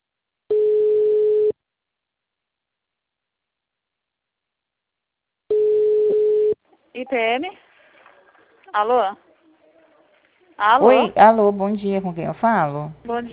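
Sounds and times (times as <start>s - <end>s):
telephone line beeps while a call is being forwarded: 0.5s - 1.5s, 5.5s - 6.6s
speech: 7.0s - 7.6s, 8.7s - 9.2s, 10.6s - 13.3s.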